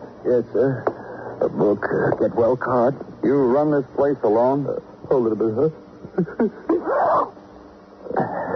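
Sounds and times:
speech: 0.3 - 7.4
person sneezing: 8.1 - 8.5.

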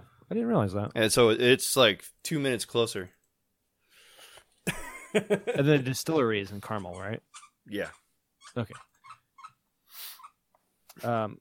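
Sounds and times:
speech: 0.3 - 3.2, 4.7 - 8.9, 11.0 - 11.3
dog chewing a squeaky toy on a bed: 6.5 - 10.4
dog whining: 6.7 - 10.4.

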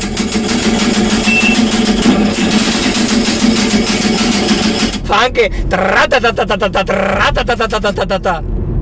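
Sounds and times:
typewriter clatter: 0.0 - 5.0
speech: 5.2 - 8.6.

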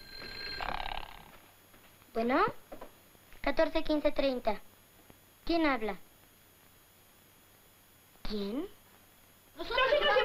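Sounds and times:
telephone ringing with a bright trilling tone: 0.0 - 1.5
faint steady hum: 0.0 - 10.2
speech: 2.2 - 2.7, 3.4 - 4.7, 5.5 - 6.0, 8.3 - 8.8
laughter: 9.6 - 10.2.

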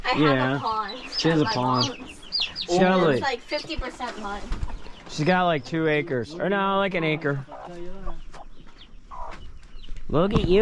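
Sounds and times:
rooster clucking: 0.0 - 3.4, 6.0 - 9.4
steady outdoor noise: 0.0 - 10.6
speech: 0.1 - 2.0, 2.7 - 8.3, 10.1 - 10.6.

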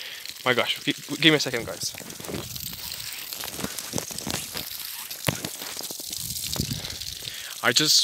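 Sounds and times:
garden hose spraying water: 0.0 - 8.0
speech: 0.4 - 2.6, 7.6 - 8.0.

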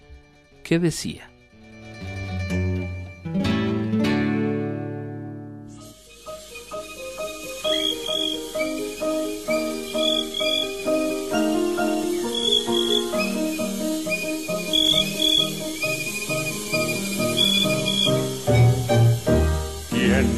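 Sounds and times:
lively instrumental tune: 0.0 - 6.0, 7.6 - 20.3
speech: 0.7 - 1.3
crickets chirping: 5.7 - 20.3
warm sustained tones: 5.7 - 20.3.

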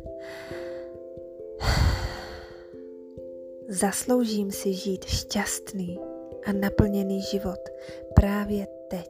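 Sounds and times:
deep breath in: 0.2 - 1.0, 1.6 - 2.8
speech: 3.7 - 9.0.

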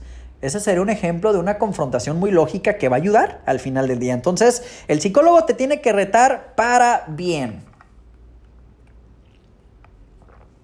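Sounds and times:
low hum: 0.0 - 10.6
speech: 0.4 - 7.7
person sipping a frappuccino: 7.8 - 10.6.

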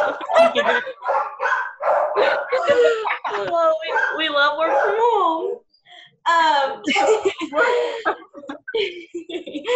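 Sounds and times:
laughter: 0.0 - 1.2, 2.2 - 4.1, 6.8 - 9.7
dogs barking in rapid loud yaps: 0.0 - 5.6.

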